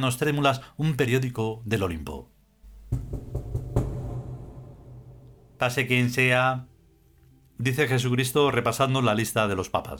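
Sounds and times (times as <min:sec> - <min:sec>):
speech: 0:00.0 - 0:02.3, 0:05.6 - 0:06.7, 0:07.6 - 0:09.9
low steady hum: 0:02.4 - 0:08.1
gentle knocking on a door: 0:02.7 - 0:05.4.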